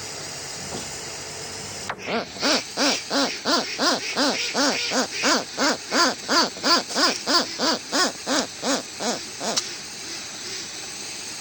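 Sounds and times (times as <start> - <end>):
Westland petrel braying song: 2.0 - 10.7.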